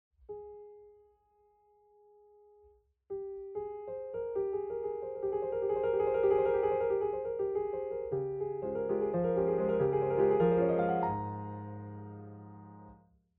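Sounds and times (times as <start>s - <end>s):
romantic American music: 4.2s - 12.9s.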